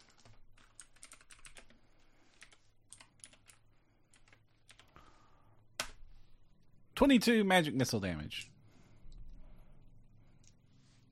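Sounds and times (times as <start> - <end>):
typing on a computer keyboard: 0.0 - 5.0
speech: 7.0 - 8.5.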